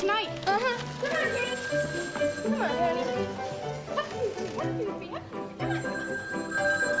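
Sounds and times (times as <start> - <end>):
voices talking: 0.0 - 6.7
telephone bell ringing: 1.3 - 3.3, 5.6 - 6.9.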